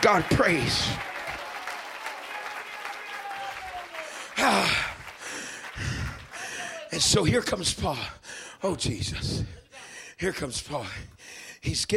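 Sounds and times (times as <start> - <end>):
speech: 0.0 - 1.1, 4.4 - 4.9, 6.9 - 9.6, 10.2 - 11.9
cheering voices: 0.0 - 5.2, 5.8 - 7.3
audience clapping hands: 0.0 - 7.6.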